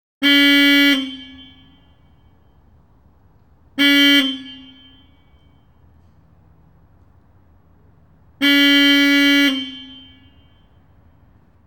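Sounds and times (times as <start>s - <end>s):
horn honking: 0.2s - 2.6s, 3.8s - 6.0s, 8.3s - 11.3s.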